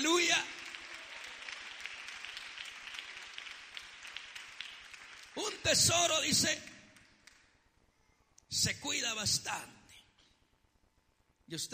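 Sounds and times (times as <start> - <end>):
congregation applauding: 0.0 - 7.5
speech: 5.7 - 6.7, 8.6 - 9.8, 11.5 - 11.7.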